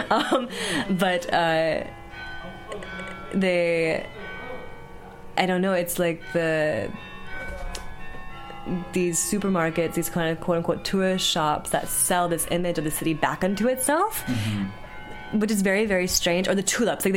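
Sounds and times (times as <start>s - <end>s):
speech: 0.0s - 2.0s, 2.7s - 4.2s, 5.4s - 7.1s, 8.7s - 17.1s
bell ringing the hour: 0.0s - 17.1s.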